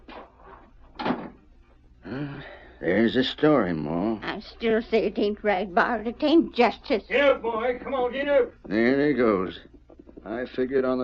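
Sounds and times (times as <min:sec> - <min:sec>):
house door shutting with a thud in a farmhouse: 0:01.0 - 0:01.4
speech: 0:02.2 - 0:11.0.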